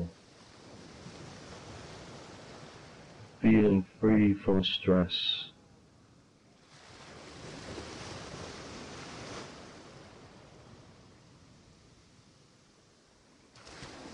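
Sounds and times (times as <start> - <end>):
ocean waves washing onto sand: 0.0 - 3.8, 6.6 - 14.1
speech: 3.4 - 5.5.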